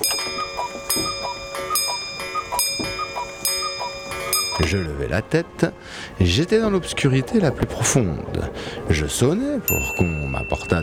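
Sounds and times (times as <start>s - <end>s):
faint pendulum clock ticking: 0.0s - 4.9s
pendulum clock chiming: 0.0s - 5.2s, 9.6s - 10.8s
speech: 4.6s - 10.8s.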